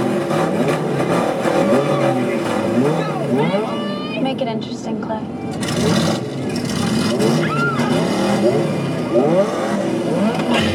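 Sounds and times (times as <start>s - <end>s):
loud car engine revving as it passes: 0.0s - 10.7s
speech: 4.6s - 6.0s.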